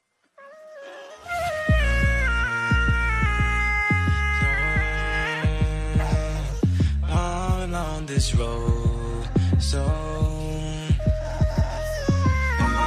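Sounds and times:
dog howling along to music: 0.4 - 6.7, 8.8 - 12.8
music with steady thumping bass beat: 1.7 - 12.8.

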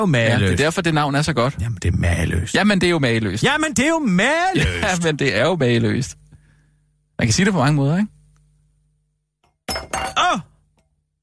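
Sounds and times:
speech: 0.0 - 6.2, 7.2 - 8.2
glass knocked over with a clatter of clinking glass: 9.4 - 10.3.

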